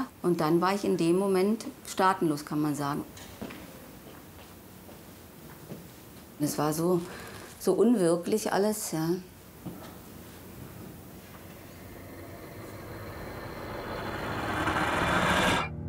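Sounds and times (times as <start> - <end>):
speech: 0.2 - 3.4, 6.4 - 9.8
broad rumbling roar of a passing train at a train station: 10.4 - 15.7
low steady engine hum: 11.0 - 15.7.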